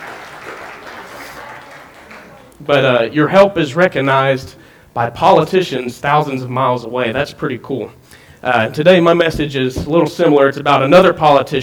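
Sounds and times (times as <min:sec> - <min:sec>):
church congregation applauding: 0:00.0 - 0:02.7
speech: 0:02.6 - 0:11.6.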